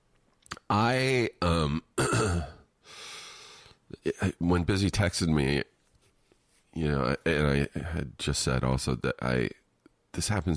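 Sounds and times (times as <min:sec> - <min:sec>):
speech: 0:00.7 - 0:02.6, 0:04.0 - 0:05.7, 0:06.8 - 0:09.6, 0:10.2 - 0:10.5
person coughing and laughing: 0:02.0 - 0:02.6
breathy exhale: 0:02.8 - 0:03.8.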